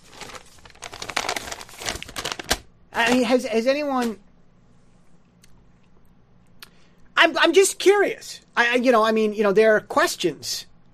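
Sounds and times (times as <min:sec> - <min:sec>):
blank paper being set down and rustled: 0:00.0 - 0:03.4
speech: 0:03.0 - 0:04.3, 0:07.2 - 0:10.7.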